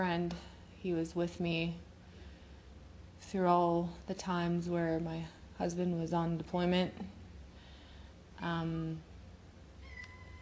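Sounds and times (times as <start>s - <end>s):
speech: 0.0s - 1.9s, 3.2s - 7.2s, 8.4s - 9.1s
low steady hum: 0.0s - 10.4s
kitten meowing: 9.8s - 10.4s.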